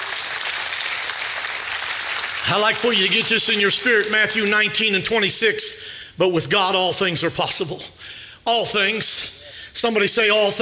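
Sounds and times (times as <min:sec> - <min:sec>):
large crowd applauding: 0:00.0 - 0:02.9
speech: 0:02.5 - 0:10.6.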